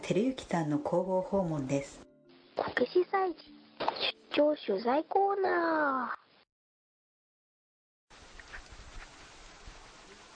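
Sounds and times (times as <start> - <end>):
speech: 0.1 - 2.1, 2.8 - 3.6, 4.4 - 6.2
heavy rain: 8.1 - 10.3.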